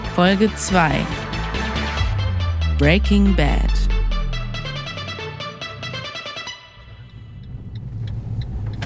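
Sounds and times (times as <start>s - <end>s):
speech: 0.1s - 1.2s, 2.8s - 3.9s
short musical jingle with a steady beat: 2.1s - 7.0s
car driving on the road toward the Baltic Sea coast heard from inside: 6.9s - 8.8s.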